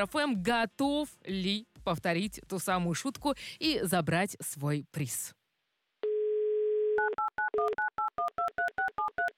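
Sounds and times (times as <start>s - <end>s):
speech: 0.0s - 5.4s
telephone dial tone: 6.0s - 9.3s.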